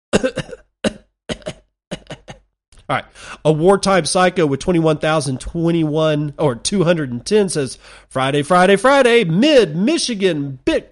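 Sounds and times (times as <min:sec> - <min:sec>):
speech: 0:00.1 - 0:00.5, 0:02.9 - 0:10.8
harsh double-hack coughs: 0:00.1 - 0:02.5.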